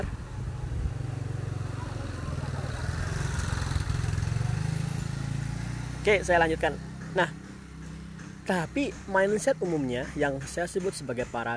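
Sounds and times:
motorcycle engine passing by a river near a house: 0.0s - 8.1s
outdoor noise: 0.0s - 11.5s
speech: 6.0s - 7.4s, 8.5s - 11.5s.

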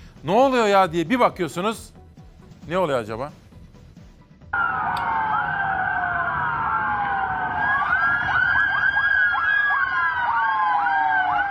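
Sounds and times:
speech: 0.2s - 2.0s, 2.7s - 3.4s
traffic rumble: 4.6s - 10.4s
sirens of several ambulances wailing in convoy: 4.6s - 11.4s.

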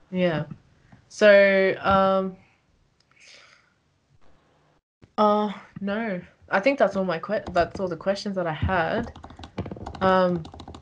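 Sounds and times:
speech: 0.1s - 2.4s, 5.2s - 9.2s, 10.0s - 10.6s
typing on a computer keyboard: 8.9s - 10.8s.

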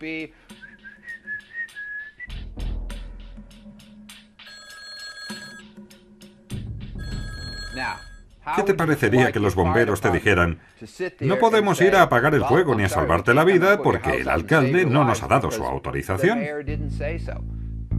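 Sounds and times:
speech: 0.0s - 0.6s, 7.8s - 17.6s
whistling tones: 0.5s - 2.4s
telephone ringing unanswered at the Pentagon: 4.4s - 5.8s, 7.0s - 8.2s.

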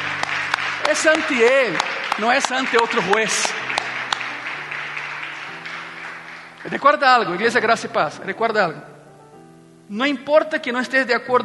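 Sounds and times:
audience applauding: 0.0s - 7.9s
speech: 0.9s - 3.7s, 6.6s - 8.9s, 9.9s - 11.4s.

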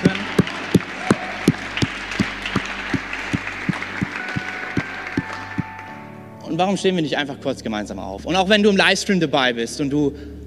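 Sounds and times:
scattered applause: 0.0s - 6.0s
audience clapping together in a steady rhythmic beat: 0.0s - 6.1s
speech: 6.5s - 10.4s.

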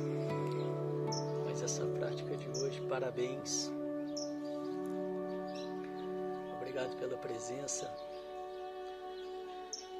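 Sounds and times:
small birds chirping outdoors: 0.0s - 9.9s
speech: 1.7s - 3.8s, 6.8s - 8.1s.

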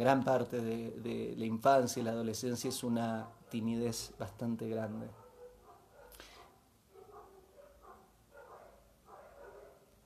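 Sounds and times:
speech: 0.0s - 5.2s
several dogs barking heard through a window: 2.6s - 4.2s, 5.1s - 10.0s.

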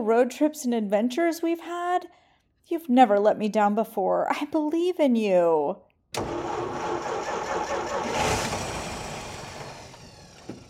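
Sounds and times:
speech: 0.0s - 6.5s
car engine cranking but failing to start: 6.2s - 10.6s.

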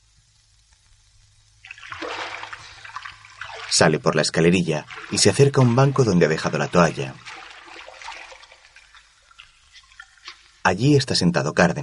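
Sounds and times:
swimmer diving into an indoor pool: 1.6s - 10.6s
speech: 3.7s - 7.3s, 10.7s - 11.8s.

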